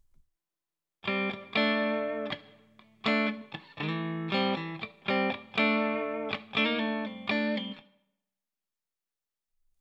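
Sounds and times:
processed guitar-like chords through a digital reverb with shortened decay: 1.0 - 7.9.

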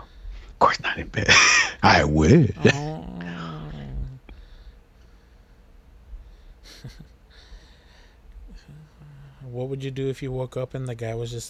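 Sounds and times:
speech: 0.6 - 2.9, 9.5 - 11.4
puppy growling: 1.8 - 4.4.

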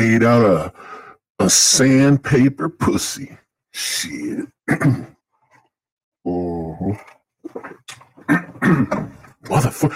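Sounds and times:
speech: 0.0 - 5.2, 6.2 - 9.9
man clearing his throat: 4.7 - 5.2, 8.2 - 9.2.

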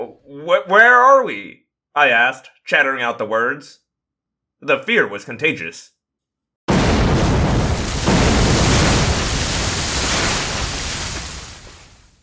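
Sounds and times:
speech: 0.0 - 3.8, 4.6 - 5.9
explosions going off all around in the English Channel: 6.7 - 12.2.

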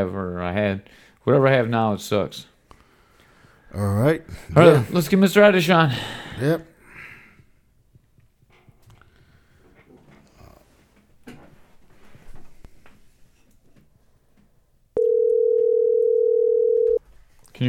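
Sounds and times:
speech: 0.0 - 2.5, 3.7 - 6.7
loud steady telephone dial tone as a call is placed: 15.0 - 17.0.

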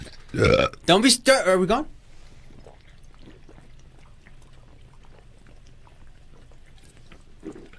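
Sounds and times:
low hum: 0.0 - 7.7
speech: 0.3 - 2.0
small drips of spilled drink: 2.1 - 7.7
spilled drink splashing in gurgling stream: 2.2 - 7.7.

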